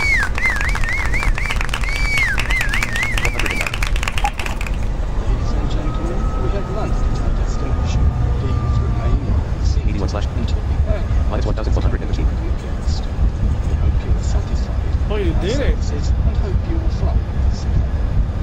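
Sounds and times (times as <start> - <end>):
rapid rattling clicks: 0.0 - 4.9
warbling electronic tone: 0.0 - 9.4
airplane landing roar and rumble: 0.0 - 18.4.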